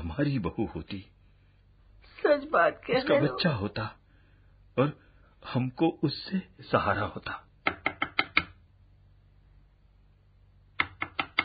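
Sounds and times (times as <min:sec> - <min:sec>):
speech: 0:00.1 - 0:01.2, 0:02.2 - 0:04.0, 0:04.8 - 0:07.5
sharp knocking on a door: 0:07.6 - 0:08.5.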